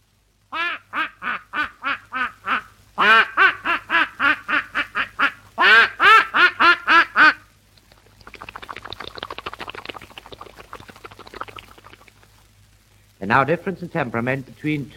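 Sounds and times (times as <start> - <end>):
soft steady splashing hiss: 0.0 - 14.9
person imitating a duck with nasal quacks: 0.6 - 7.4
speech: 13.3 - 14.9.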